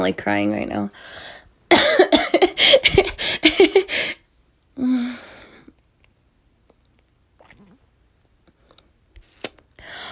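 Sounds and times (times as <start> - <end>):
speech: 0.0 - 1.3
person coughing after choking: 1.7 - 3.9.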